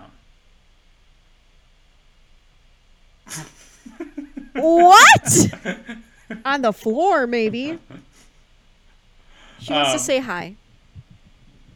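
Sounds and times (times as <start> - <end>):
speech: 4.6 - 8.1, 9.6 - 10.6
female dog high-pitched whimpers: 4.8 - 5.3
female dog sharp breathy yelp: 4.8 - 5.4.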